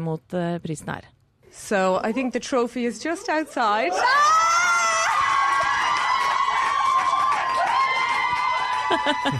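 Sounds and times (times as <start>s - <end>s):
speech: 0.0s - 4.6s, 8.9s - 9.3s
several people screaming excitedly at an award presentation: 3.8s - 9.3s
laughter: 8.6s - 9.3s.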